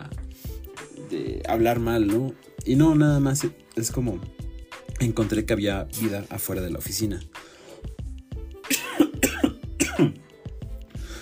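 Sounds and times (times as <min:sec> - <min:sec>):
speech: 0:01.1 - 0:04.4, 0:05.0 - 0:07.4, 0:10.0 - 0:10.2
harsh coughing fit: 0:08.6 - 0:10.2
throat clearing: 0:08.7 - 0:10.2.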